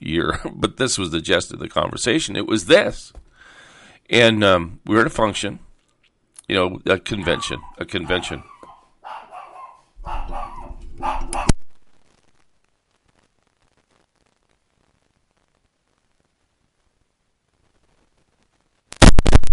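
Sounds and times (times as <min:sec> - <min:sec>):
speech: 0:00.1 - 0:03.2, 0:04.1 - 0:05.7, 0:06.5 - 0:08.5
dog barking: 0:07.2 - 0:11.6.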